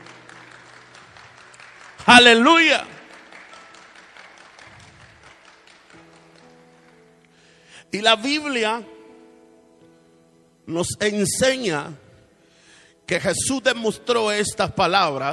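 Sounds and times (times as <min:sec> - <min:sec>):
crowd applauding: 0:00.0 - 0:07.5
speech: 0:02.0 - 0:02.9, 0:07.9 - 0:08.9, 0:10.7 - 0:12.0, 0:13.1 - 0:15.3.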